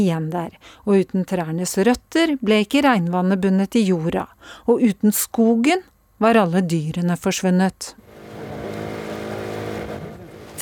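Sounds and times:
speech: 0.0 - 8.0
small motorboat engine droning speeding across water: 8.0 - 10.5.

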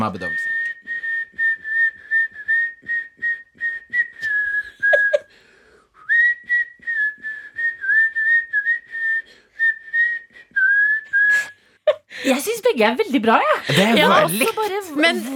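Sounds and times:
speech: 0.0 - 0.6, 12.3 - 15.3
person under anesthesia whistling a tune: 0.3 - 5.3, 6.0 - 11.6
laughter: 4.8 - 5.3, 13.5 - 15.3
breathing: 5.2 - 6.0, 9.2 - 9.6, 11.4 - 12.4.

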